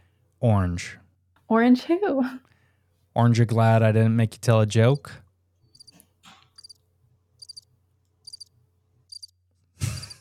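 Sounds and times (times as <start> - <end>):
speech: 0.4 - 2.5, 3.2 - 5.2
crickets chirping: 6.6 - 6.8, 7.4 - 7.6, 8.2 - 8.5, 9.1 - 9.3.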